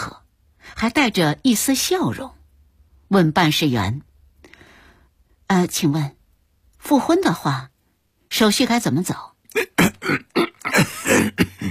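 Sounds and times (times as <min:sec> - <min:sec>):
speech: 0:00.8 - 0:02.4, 0:03.1 - 0:04.1, 0:05.5 - 0:06.2, 0:06.8 - 0:07.7, 0:08.3 - 0:11.6
flustered father coughing and clearing his throat: 0:09.5 - 0:11.6.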